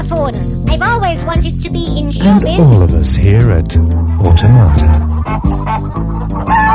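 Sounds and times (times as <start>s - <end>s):
speech: 0.2s - 6.7s
parrot squawking loudly: 3.8s - 6.7s.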